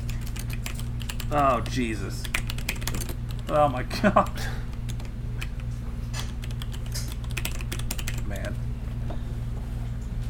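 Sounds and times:
typing on a computer keyboard: 0.0s - 3.6s, 4.2s - 8.6s
steady low electrical hum: 0.0s - 10.2s
speech: 1.3s - 2.4s, 3.5s - 4.6s.

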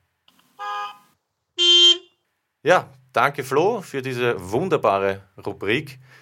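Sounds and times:
horn honks: 0.6s - 2.2s
speech: 2.6s - 6.2s.

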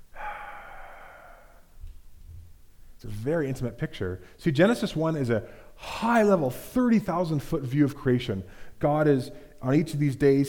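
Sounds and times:
person exhaling one long breathy breath: 0.1s - 1.8s
speech: 3.0s - 10.4s.

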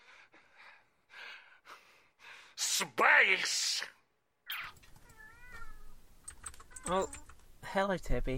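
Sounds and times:
speech: 3.0s - 4.0s, 6.9s - 8.3s
cat meowing: 4.6s - 6.0s.

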